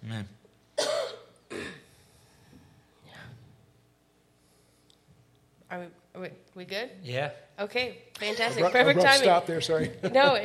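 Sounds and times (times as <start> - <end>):
speech: 0.1 - 0.4, 5.7 - 10.4
person coughing: 0.8 - 1.9.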